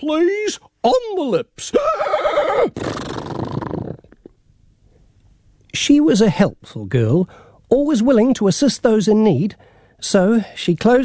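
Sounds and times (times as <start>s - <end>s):
speech: 0.0s - 3.1s, 5.8s - 11.0s
horse whinnying: 1.8s - 4.0s.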